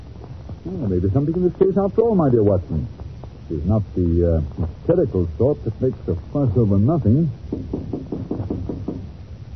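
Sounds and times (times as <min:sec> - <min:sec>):
speech: 0:00.6 - 0:08.0
firm knocks on a door: 0:07.5 - 0:09.2.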